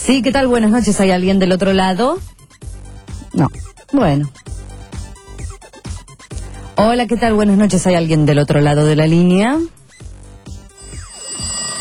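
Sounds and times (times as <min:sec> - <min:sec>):
speech: 0:00.1 - 0:02.4, 0:03.4 - 0:04.6, 0:06.8 - 0:09.8
telephones ringing with electronic trills: 0:10.8 - 0:11.7.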